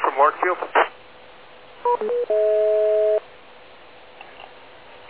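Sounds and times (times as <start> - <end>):
speech: 0.2 - 0.9
DTMF telephone keypad tones played from a speaker into a microphone: 1.9 - 3.2.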